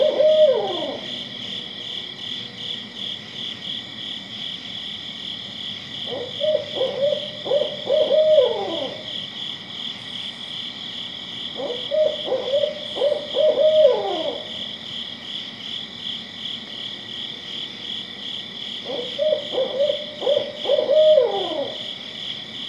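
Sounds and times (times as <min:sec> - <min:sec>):
barred owl hooting: 0:00.0 - 0:01.3, 0:06.0 - 0:09.3, 0:11.6 - 0:14.6, 0:18.8 - 0:21.9
insect chorus droning: 0:00.0 - 0:22.6.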